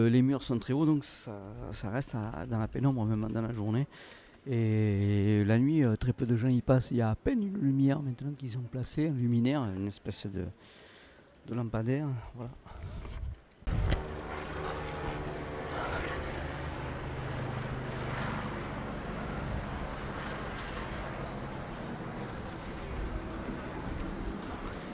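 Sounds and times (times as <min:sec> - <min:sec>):
speech: 0:00.0 - 0:10.8, 0:11.4 - 0:13.1
helicopter rotor thrum passing overhead: 0:13.7 - 0:24.9.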